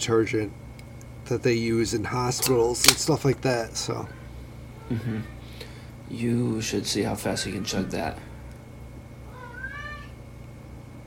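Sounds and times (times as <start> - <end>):
speech: 0.0 - 0.6, 1.3 - 4.2, 4.9 - 5.4, 6.1 - 8.3
low hum: 0.0 - 11.0
cat meowing: 9.3 - 10.2.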